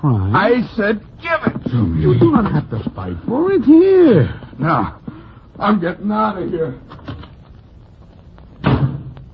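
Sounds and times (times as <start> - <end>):
speech: 0.0 - 5.0, 5.6 - 7.0
door slamming shut: 8.6 - 9.1.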